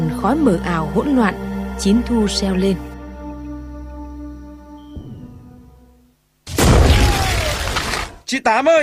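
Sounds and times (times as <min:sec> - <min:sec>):
speech: 0:00.2 - 0:02.9, 0:08.3 - 0:08.8
grenade explosion in a wartime street fight: 0:06.5 - 0:08.2.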